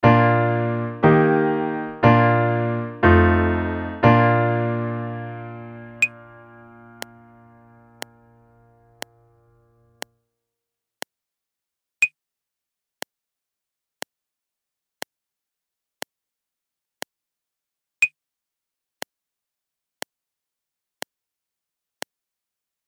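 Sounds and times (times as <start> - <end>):
music in B flat major without piano: 0.0 - 9.0.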